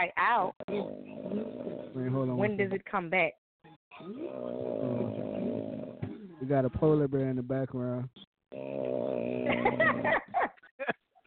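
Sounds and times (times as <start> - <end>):
speech: 0.0 - 3.4, 4.0 - 5.0, 6.4 - 9.0
person snoring with a rough throaty drone: 0.6 - 2.4, 4.0 - 6.2, 8.5 - 10.2.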